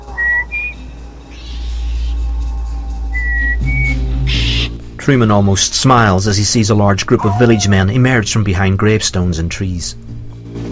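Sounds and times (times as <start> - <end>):
steady low rumble: 0.0 - 8.6
person whistling through pursed lips: 3.1 - 4.0
speech: 5.0 - 10.1.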